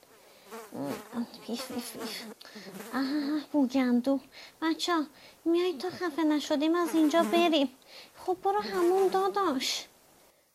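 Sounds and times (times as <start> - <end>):
flies buzzing: 0.0 - 3.7, 5.8 - 7.8, 8.4 - 9.6
speech: 1.2 - 9.9.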